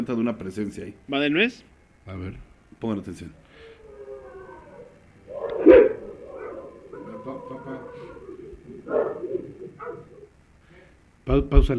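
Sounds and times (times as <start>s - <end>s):
speech: 0.0s - 3.7s, 7.2s - 8.1s, 11.3s - 11.7s
several dogs barking and yelping excitedly: 3.6s - 10.4s.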